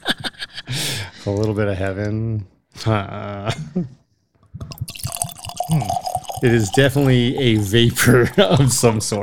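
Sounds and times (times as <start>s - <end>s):
speech: 1.2s - 4.0s, 5.7s - 9.2s
Scotch whisky glugging as poured into a glass: 4.7s - 8.4s.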